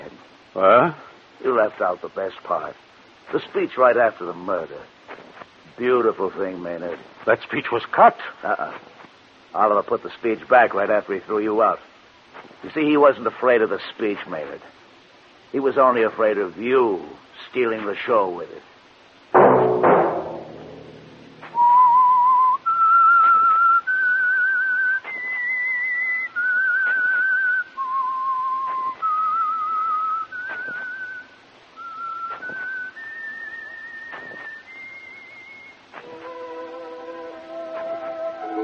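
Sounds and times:
speech: 0.6s - 5.0s, 5.8s - 8.9s, 9.5s - 14.8s, 15.5s - 18.7s
solo whistled melody: 21.5s - 38.6s
orchestral chords: 36.0s - 38.6s.

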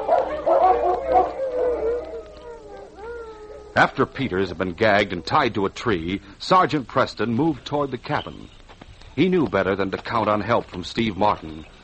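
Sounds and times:
sled dogs howling and barking in an excited chorus: 0.0s - 5.4s
speech: 3.8s - 8.6s, 9.2s - 11.8s.

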